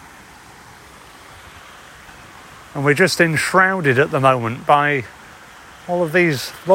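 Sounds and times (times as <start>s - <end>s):
small waterfalls cascading: 0.0s - 6.7s
speech: 2.8s - 5.2s, 5.9s - 6.7s.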